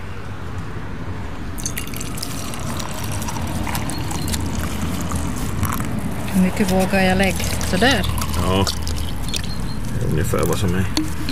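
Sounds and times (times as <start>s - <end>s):
low constant rumble: 1.4s - 11.3s
milk pouring into a mug: 1.6s - 6.3s, 7.2s - 9.6s
speech: 6.4s - 8.8s, 10.2s - 11.3s.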